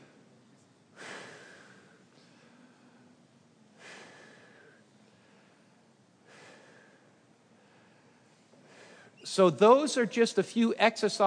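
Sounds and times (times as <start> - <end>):
slow deep breaths at the end of a relaxation exercise: 0.9 - 9.3
speech: 9.4 - 11.2.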